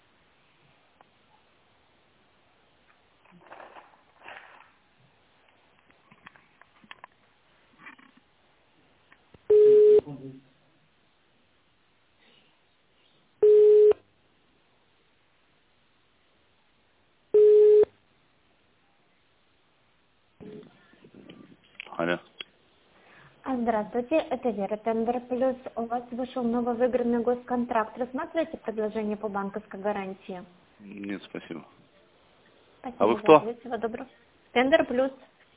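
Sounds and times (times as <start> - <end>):
rustling: 2.8 - 8.3
telephone tones while a call is being transferred: 9.5 - 10.0, 13.4 - 14.0, 17.4 - 17.9
speech: 22.0 - 22.4, 23.4 - 31.8, 32.8 - 35.3.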